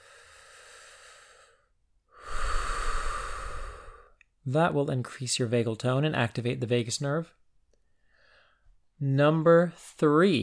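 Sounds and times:
deep slow breathing: 0:00.0 - 0:04.2
speech: 0:04.5 - 0:07.4, 0:09.0 - 0:10.4.

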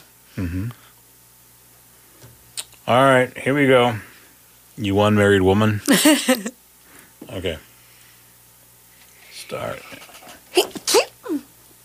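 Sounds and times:
speech: 0:00.4 - 0:00.9, 0:02.9 - 0:04.1, 0:04.8 - 0:06.6, 0:07.2 - 0:07.7, 0:09.5 - 0:10.7
person sneezing: 0:10.6 - 0:11.4.

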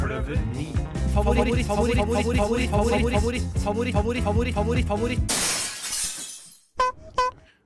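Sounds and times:
speech: 0:00.3 - 0:05.6
glass shattering: 0:05.3 - 0:06.8.

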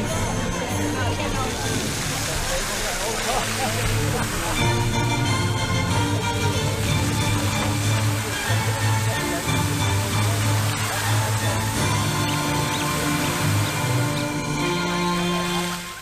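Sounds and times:
murmuring voices of visitors: 0:00.0 - 0:16.0
water splashing from a restored fountain in a park: 0:00.0 - 0:16.0.

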